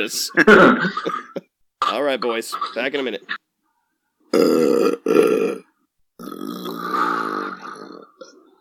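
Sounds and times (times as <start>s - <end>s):
speech: 0.0s - 1.4s, 2.0s - 3.4s, 4.4s - 5.4s
man belching: 4.3s - 8.5s.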